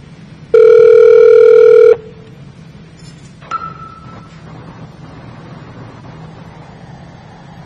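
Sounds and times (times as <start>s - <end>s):
VoIP softphone call ringing tone: 0.5s - 2.2s.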